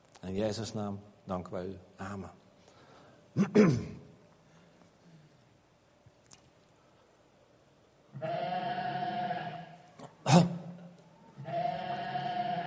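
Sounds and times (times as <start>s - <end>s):
speech: 0.3s - 2.4s, 3.4s - 4.0s
sheep bleating: 8.1s - 9.8s, 11.4s - 12.6s.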